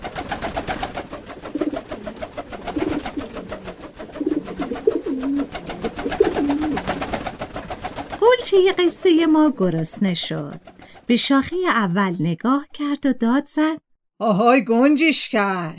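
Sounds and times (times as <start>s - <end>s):
pigeon cooing: 1.4s - 7.0s
speech: 8.5s - 15.7s.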